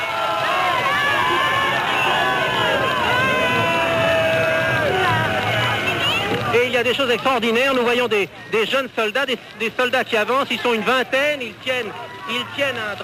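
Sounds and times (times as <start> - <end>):
crowd singing and cheering in celebration: 0.0 - 6.6
speech: 6.8 - 13.0.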